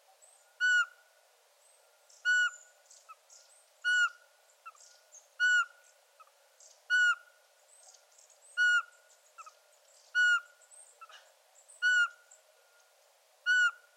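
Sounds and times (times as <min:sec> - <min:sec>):
Eurasian pygmy owl repeating short pure whistled hoots: 0:00.6 - 0:00.9, 0:02.2 - 0:02.6, 0:03.8 - 0:04.2, 0:05.4 - 0:05.7, 0:06.9 - 0:07.2, 0:08.6 - 0:08.9, 0:10.2 - 0:11.2, 0:11.8 - 0:12.2, 0:13.5 - 0:13.9.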